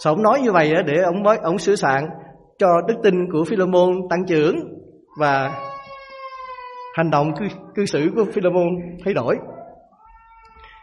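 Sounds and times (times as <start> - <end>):
speech: 0.0 - 5.7, 7.0 - 9.6
young child crying during a church sermon: 5.2 - 8.1, 9.4 - 10.8.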